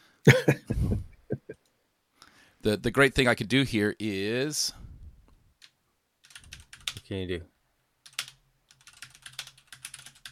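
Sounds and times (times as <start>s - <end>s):
speech: 0.2s - 0.6s, 2.6s - 4.8s, 7.1s - 7.5s
typing on a computer keyboard: 5.6s - 7.1s, 8.0s - 10.3s.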